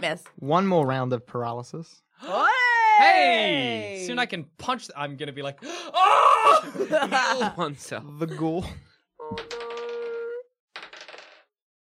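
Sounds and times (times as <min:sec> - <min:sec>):
speech: 0:00.0 - 0:09.7
laughter: 0:06.4 - 0:08.8
many dice being rolled across a surface: 0:09.3 - 0:10.1, 0:10.8 - 0:11.5.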